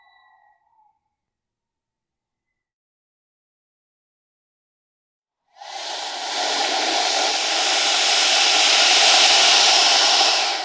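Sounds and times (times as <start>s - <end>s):
python hissing: 5.6s - 10.6s.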